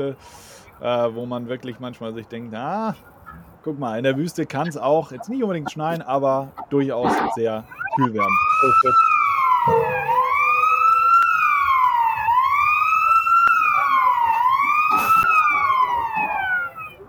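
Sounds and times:
speech: 0:00.0 - 0:09.8
ambulance siren wailing at a motor race: 0:07.0 - 0:17.0.

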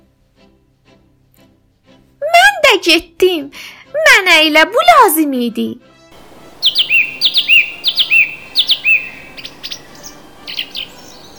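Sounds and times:
speech: 0:02.7 - 0:05.9
sparrow chirping: 0:06.2 - 0:11.3.

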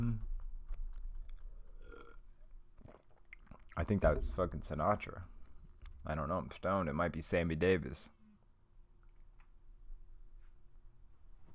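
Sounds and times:
person sipping water: 0:00.8 - 0:03.9
person swallowing: 0:01.5 - 0:04.4
soft slurp: 0:01.7 - 0:03.8
speech: 0:03.8 - 0:05.4, 0:06.0 - 0:08.2.

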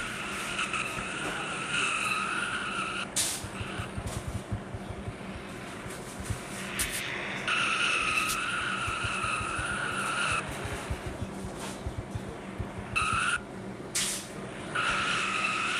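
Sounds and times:
race car engines roaring: 0:00.0 - 0:15.7
race car tires screeching in sustained burnouts: 0:00.2 - 0:03.9, 0:07.4 - 0:10.6, 0:13.0 - 0:13.4, 0:14.7 - 0:15.7.

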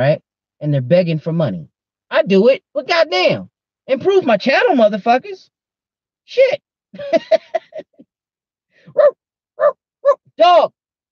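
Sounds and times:
speech: 0:00.0 - 0:05.5, 0:06.3 - 0:07.9, 0:08.9 - 0:09.8, 0:10.4 - 0:10.8
laughter: 0:07.0 - 0:08.1
dog barking: 0:08.9 - 0:10.3.

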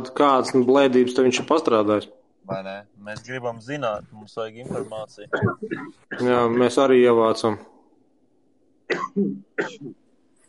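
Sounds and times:
speech: 0:00.1 - 0:07.7, 0:08.9 - 0:10.0
person coughing: 0:08.9 - 0:09.9.

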